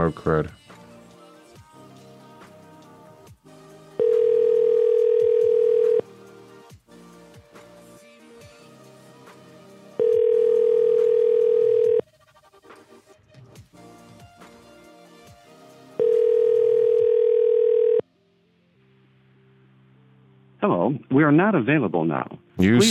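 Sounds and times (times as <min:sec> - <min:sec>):
speech: 0:00.0 - 0:00.6, 0:21.3 - 0:22.8
telephone line tone while placing a call: 0:04.0 - 0:06.0, 0:10.0 - 0:12.0, 0:16.0 - 0:18.0.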